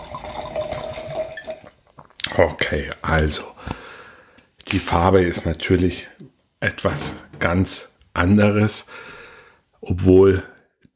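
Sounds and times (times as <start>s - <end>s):
drink pouring into a glass: 0.0s - 1.8s
speech: 2.4s - 3.5s, 4.7s - 9.1s, 9.8s - 10.5s.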